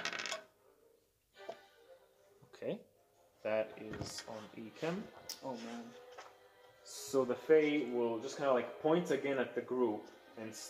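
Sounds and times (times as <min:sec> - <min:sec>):
dice clattering across a hard surface: 0:00.0 - 0:00.5
speech: 0:02.6 - 0:06.0, 0:06.8 - 0:10.6.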